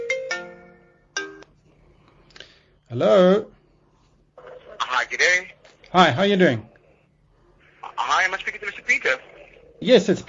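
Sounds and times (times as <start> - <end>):
phone ringtone with bright electronic notes: 0.0 - 1.6
speech: 2.9 - 3.6, 5.1 - 6.7, 8.3 - 10.2.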